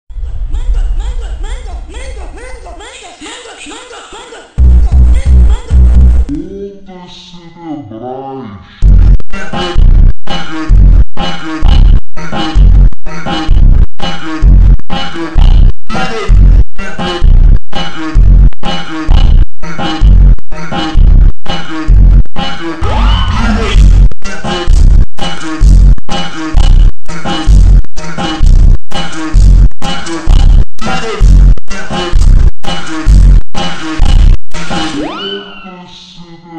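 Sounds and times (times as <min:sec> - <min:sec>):
slow montagem funk music with superbass and reverb: 0:04.6 - 0:06.4, 0:08.8 - 0:35.0.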